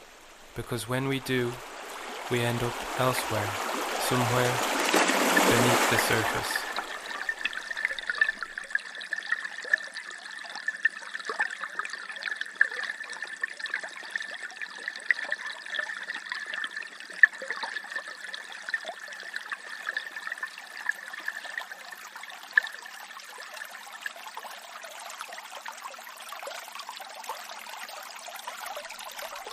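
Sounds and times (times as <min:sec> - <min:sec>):
small river babbling over stones near its source in the Glenasmole Valley: 0:00.0 - 0:29.5
speech: 0:00.6 - 0:01.7, 0:02.3 - 0:04.8, 0:05.5 - 0:06.7.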